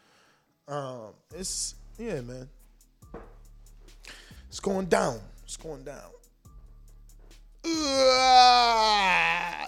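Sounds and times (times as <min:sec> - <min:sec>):
speech: 0:00.7 - 0:03.3, 0:04.5 - 0:06.2
man groaning while stretching: 0:07.6 - 0:09.6.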